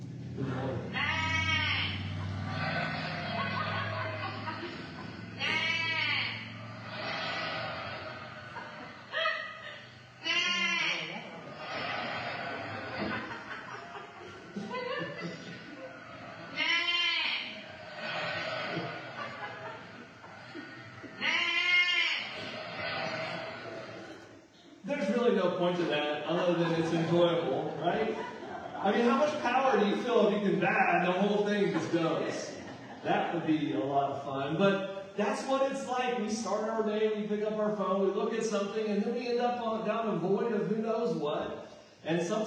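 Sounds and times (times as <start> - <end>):
laughter: 0.4 - 37.2
flock of sheep bleating: 0.9 - 13.1, 16.1 - 19.5, 20.6 - 24.2
speech: 25.6 - 27.3, 33.0 - 42.4.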